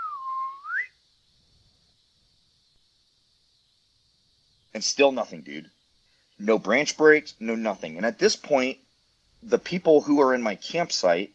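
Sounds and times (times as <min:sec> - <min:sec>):
clear human whistle: 0:00.0 - 0:01.0
speech: 0:04.8 - 0:05.8, 0:06.4 - 0:08.8, 0:09.4 - 0:11.3.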